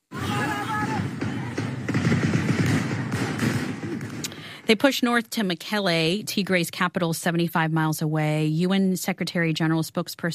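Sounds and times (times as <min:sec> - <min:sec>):
gunfire from fighting in the Tigray region of northern Ethiopia: 0:00.4 - 0:04.8
speech: 0:04.7 - 0:10.3.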